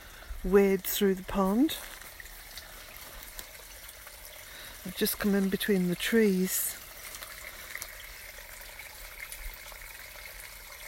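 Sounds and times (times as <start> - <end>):
stream swollen with rainwater flowing between trees: 0.0 - 10.8
speech: 0.4 - 2.0, 4.8 - 6.8.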